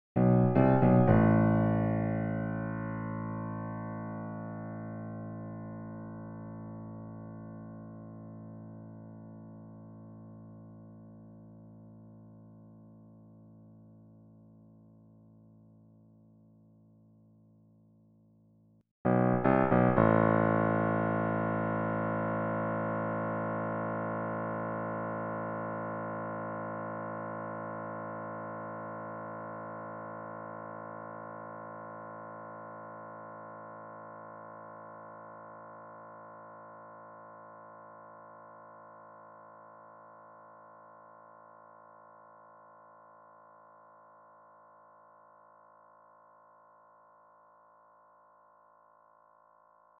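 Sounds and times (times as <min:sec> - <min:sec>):
piano: 0:00.2 - 0:13.4, 0:19.0 - 0:40.3.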